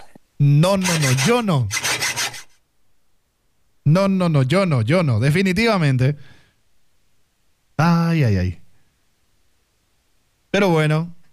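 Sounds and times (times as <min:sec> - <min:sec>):
speech: 0:00.4 - 0:01.8, 0:03.9 - 0:06.3, 0:07.8 - 0:08.6, 0:10.5 - 0:11.2
handsaw rasping through wood: 0:00.7 - 0:02.6.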